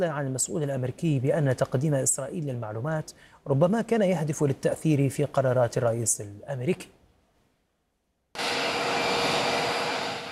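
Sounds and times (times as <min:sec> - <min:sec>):
speech: 0:00.0 - 0:07.0
aircraft engine roaring: 0:08.4 - 0:10.2.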